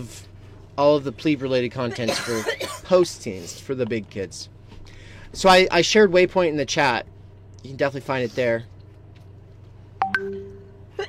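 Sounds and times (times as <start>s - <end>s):
speech: 0.0s - 4.6s, 5.3s - 8.7s
electronic computer notification chime: 10.0s - 10.8s.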